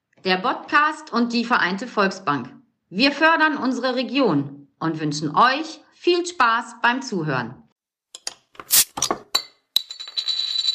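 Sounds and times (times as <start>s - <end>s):
speech: 0.2s - 7.6s, 8.6s - 9.0s
glasses clinking in a toast: 8.2s - 10.7s.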